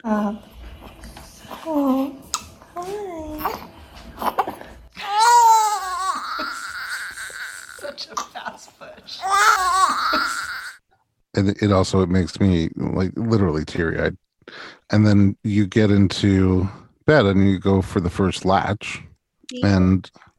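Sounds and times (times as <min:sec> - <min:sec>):
speech: 0:00.0 - 0:00.5, 0:11.4 - 0:14.2, 0:14.9 - 0:20.3
newborn baby crying: 0:02.9 - 0:08.3, 0:09.2 - 0:10.8.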